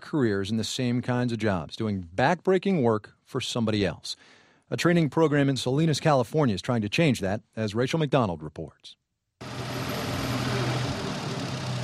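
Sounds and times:
speech: 0.1s - 9.5s
tractor engine idling: 9.4s - 11.8s.

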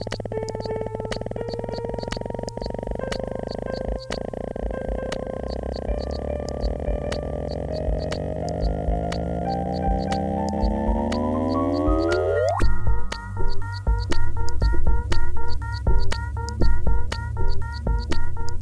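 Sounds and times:
layered electronic tone sweeping upward: 0.0s - 13.8s
low electronic drone: 0.0s - 18.6s
pulsing rhythmic electronic music section: 0.0s - 18.6s
regular ticking percussion: 0.0s - 18.6s.

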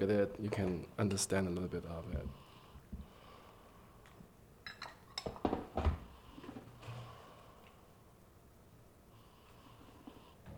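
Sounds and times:
speech: 0.0s - 2.4s
person breathing in and out smelling tea from a cup: 2.3s - 4.4s, 6.0s - 8.2s, 9.0s - 10.5s
faint clinks of porcelain cup: 4.6s - 5.4s.

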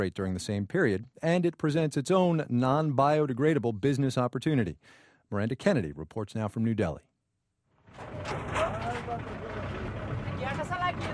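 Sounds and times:
speech: 0.0s - 7.1s
rickety truck engine rattling while backing into a dump in New Delhi: 7.9s - 11.1s.

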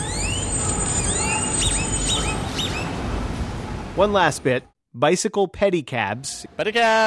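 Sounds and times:
city grackles calling with squeaky whistles and staticky chirps: 0.0s - 3.0s
speech: 4.0s - 7.0s.

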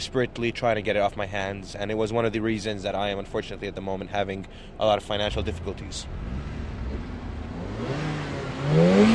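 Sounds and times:
speech: 0.0s - 6.5s
sports car engine revving in a car park: 5.2s - 9.1s.

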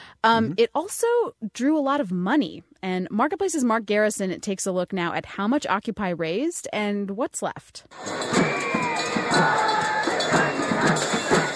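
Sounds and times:
speech: 0.2s - 8.7s, 9.4s - 11.1s
louder calls rising above a crowd: 0.3s - 0.6s, 8.8s - 11.5s
rhythmic thumps: 0.3s - 0.7s, 7.9s - 11.5s
large outdoor crowd cheering and shouting at a protest: 8.0s - 11.5s.

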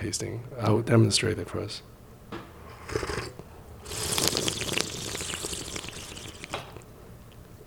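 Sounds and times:
speech: 0.0s - 1.9s
airy hissing slurps of a drink sucked in with air: 2.7s - 6.9s.

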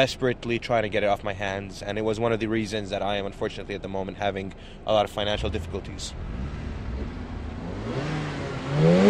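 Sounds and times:
speech: 0.0s - 6.6s
sports car engine idling and revving in car park: 5.2s - 9.0s.

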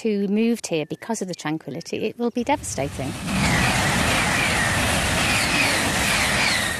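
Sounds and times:
speech: 0.0s - 3.6s
high-speed train rushing past with wind and rail noise: 2.5s - 6.7s.

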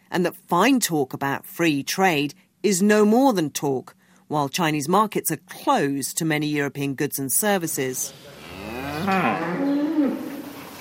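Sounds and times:
speech: 0.2s - 8.4s, 9.0s - 9.6s
dairy cow on a farm mooing loudly: 8.4s - 10.6s.

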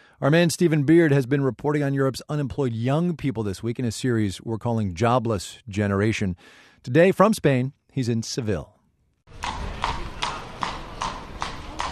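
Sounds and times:
speech: 0.2s - 8.8s
faint outdoor murmur: 9.3s - 11.9s
horse hooves clip-clopping at a trot on a hard street: 9.3s - 11.9s
carriage wheels rumbling: 9.4s - 11.9s.

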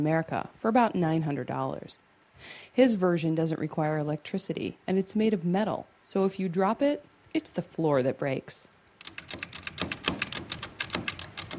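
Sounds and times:
speech: 0.0s - 9.5s
small manual metal Braille writer being typed on: 9.0s - 11.5s.

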